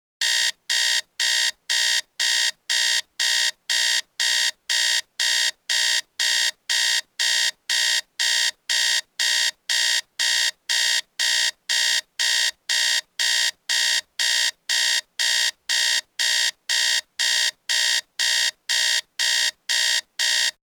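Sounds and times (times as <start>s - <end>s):
electronic alarm clock buzzing: 0.2s - 20.6s.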